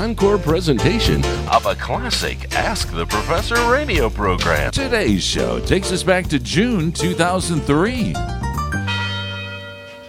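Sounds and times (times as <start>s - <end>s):
speech: 0.0s - 8.4s
university tower bell chimes ringing: 8.5s - 10.0s.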